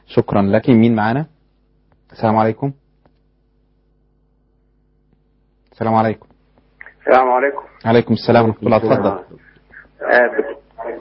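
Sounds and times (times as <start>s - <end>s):
speech: 0.2s - 1.3s, 2.1s - 2.8s, 5.8s - 6.3s, 7.1s - 9.4s, 10.0s - 10.9s
television broadcast voices over a phone line: 6.8s - 10.9s.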